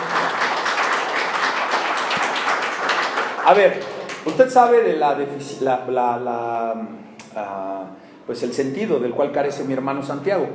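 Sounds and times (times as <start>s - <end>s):
church audience applauding: 0.0s - 4.6s
speech: 3.5s - 10.5s.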